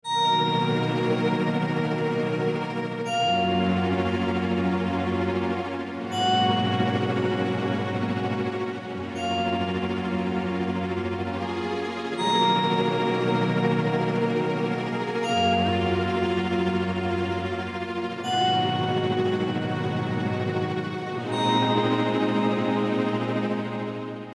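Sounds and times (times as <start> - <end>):
synth string and bell pad: 0.0 - 24.3.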